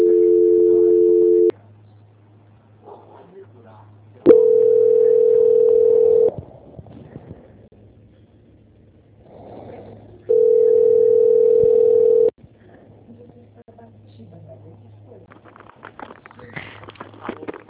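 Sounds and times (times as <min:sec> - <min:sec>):
telephone line beeps while a call is being transferred: 0:00.0 - 0:01.5, 0:04.3 - 0:06.3, 0:10.3 - 0:12.3
faint low hum on a telephone line: 0:00.0 - 0:15.6.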